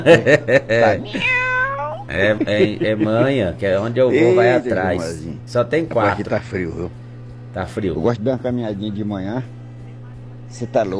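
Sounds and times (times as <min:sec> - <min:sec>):
laughter: 0:00.0 - 0:01.3, 0:02.1 - 0:03.6
speech: 0:00.0 - 0:01.4, 0:02.1 - 0:07.0, 0:07.6 - 0:09.6, 0:10.5 - 0:10.9
cat meowing: 0:01.1 - 0:02.0.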